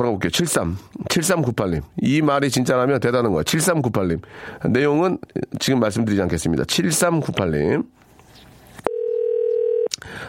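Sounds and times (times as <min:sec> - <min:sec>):
speech: 0:00.0 - 0:08.0
faint noise: 0:00.0 - 0:10.2
telephone ringback tone while placing call: 0:08.8 - 0:09.9.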